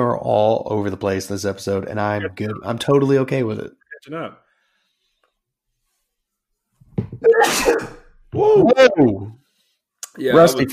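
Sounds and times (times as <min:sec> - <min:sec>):
speech: 0:00.3 - 0:04.4, 0:07.2 - 0:09.4, 0:10.2 - 0:10.7
person sneezing: 0:07.2 - 0:08.1.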